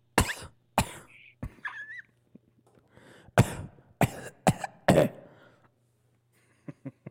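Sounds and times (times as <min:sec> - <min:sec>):
person coughing harshly: 0:00.2 - 0:01.9, 0:03.4 - 0:05.4.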